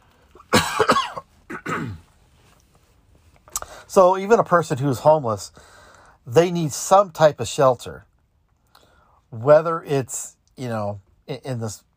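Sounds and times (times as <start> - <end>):
person coughing harshly from a throat tickle: 0.4 - 2.1
speech: 3.9 - 8.1, 9.3 - 11.9.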